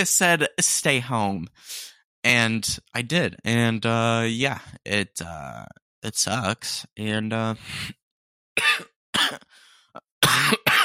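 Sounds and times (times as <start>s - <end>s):
speech: 0.0s - 8.0s, 8.6s - 9.5s, 10.2s - 10.6s
sick person coughing: 8.6s - 9.6s, 10.2s - 10.8s.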